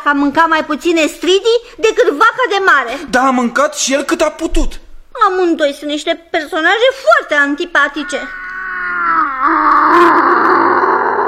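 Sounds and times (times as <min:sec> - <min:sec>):
speech: 0:00.0 - 0:08.4
voice imitating the loud snoring of a sleeping king: 0:08.9 - 0:11.2.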